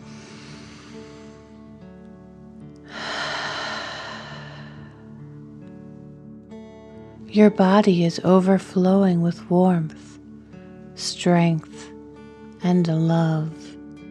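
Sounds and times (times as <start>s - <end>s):
deep breath in through nose and out through mouth: 0.0s - 1.8s, 2.9s - 5.2s
soft sustained music: 0.0s - 14.1s
speech: 7.4s - 10.1s, 11.2s - 11.7s, 12.6s - 13.6s.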